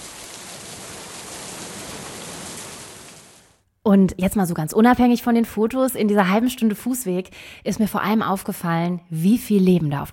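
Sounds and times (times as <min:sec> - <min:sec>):
steady soft rain falling: 0:00.0 - 0:03.6
speech: 0:03.9 - 0:10.1.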